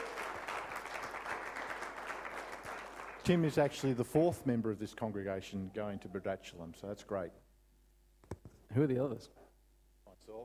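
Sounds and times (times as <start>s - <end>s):
congregation applauding: 0.0s - 4.3s
speech: 3.2s - 7.4s, 8.8s - 9.4s, 10.2s - 10.4s.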